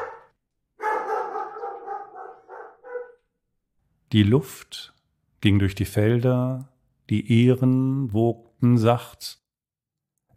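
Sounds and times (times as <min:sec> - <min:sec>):
dog barking threateningly: 0:00.0 - 0:03.2
speech: 0:04.1 - 0:09.4.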